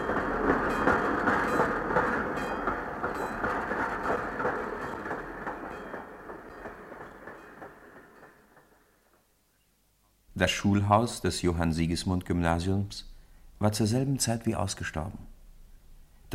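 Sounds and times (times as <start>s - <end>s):
train pulling out of a station hall, rumbling with rail clatter: 0.0s - 9.2s
speech: 10.4s - 15.3s.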